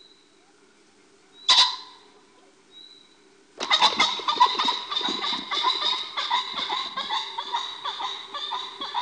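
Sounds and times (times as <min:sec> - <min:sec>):
pheasant clucking calls: 0:01.5 - 0:02.0, 0:03.6 - 0:08.9.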